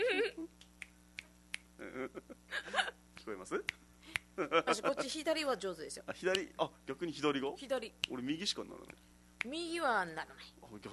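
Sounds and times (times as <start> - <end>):
finger snapping: 0.6 - 1.7
speech: 3.3 - 3.8, 4.4 - 10.9.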